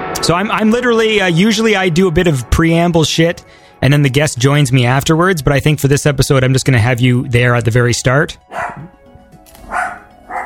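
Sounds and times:
speech: 0.2s - 8.9s
dog barking: 8.5s - 8.9s, 9.6s - 10.4s.

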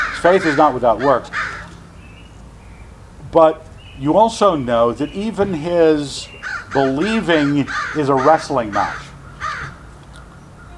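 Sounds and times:
crow giving a harsh raspy caw: 0.0s - 2.1s, 6.3s - 10.7s
speech: 0.2s - 1.4s, 3.3s - 9.0s.

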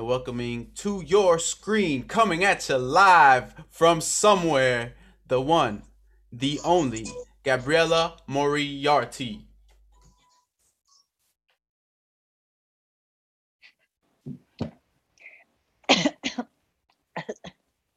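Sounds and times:
speech: 0.0s - 9.5s
person coughing dry short bursts: 15.9s - 16.5s.

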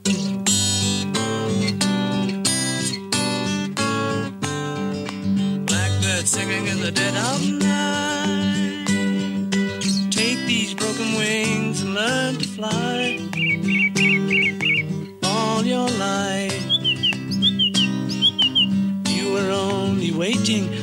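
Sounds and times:
steady music with guitar-like instrumentation: 0.0s - 20.8s
thrush singing whistled phrases: 5.7s - 20.8s.

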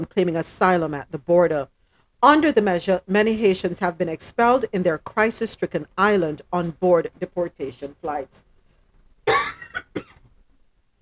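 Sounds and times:
speech: 0.0s - 8.5s
person coughing: 9.3s - 10.2s.

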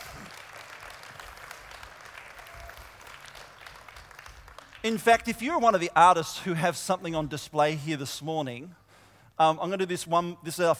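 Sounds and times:
room full of people applauding: 0.0s - 4.9s
speech: 4.8s - 8.8s, 9.4s - 10.7s.

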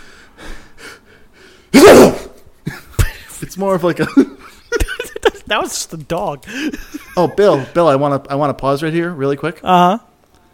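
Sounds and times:
person forcing a fake sneeze: 1.7s - 2.4s
laughter: 2.7s - 8.0s
speech: 3.6s - 4.4s, 5.5s - 10.1s.

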